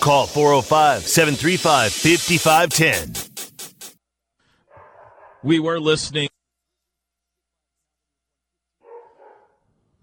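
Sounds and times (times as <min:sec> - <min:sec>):
speech: 0:00.0 - 0:03.3, 0:05.4 - 0:06.3
dog barking: 0:04.6 - 0:05.5, 0:08.8 - 0:09.7.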